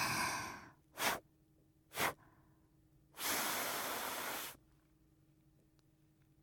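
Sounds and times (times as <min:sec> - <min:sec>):
breath blown through a face mask: 0:00.0 - 0:01.3, 0:01.9 - 0:02.4, 0:03.1 - 0:04.6.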